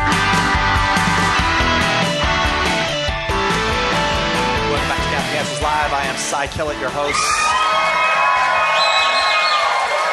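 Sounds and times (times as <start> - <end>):
conference audience cheering and clapping in ballroom: 0.1 - 10.1
speech: 6.4 - 7.6
audience whistles and whoops: 7.1 - 10.1.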